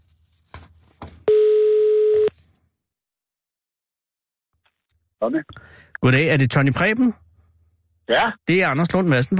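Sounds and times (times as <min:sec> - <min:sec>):
telephone ringing tone of an outgoing call: 0:01.3 - 0:02.3
speech: 0:05.2 - 0:07.2, 0:08.1 - 0:09.3.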